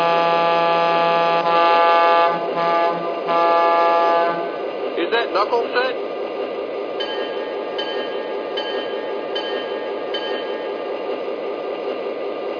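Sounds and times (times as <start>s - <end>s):
passenger train rumbling by at station: 0.0s - 12.5s
train wheels clacking over rail joints: 2.5s - 10.9s.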